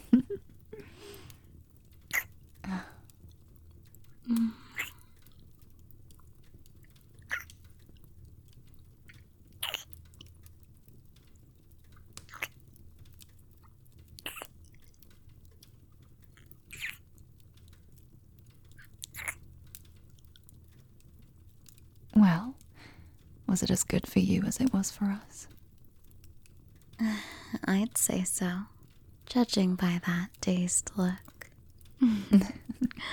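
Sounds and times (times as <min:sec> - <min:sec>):
person chewing food after taking a taste: 0:00.0 - 0:21.0
speech: 0:23.6 - 0:25.6, 0:27.7 - 0:31.3, 0:32.0 - 0:33.1.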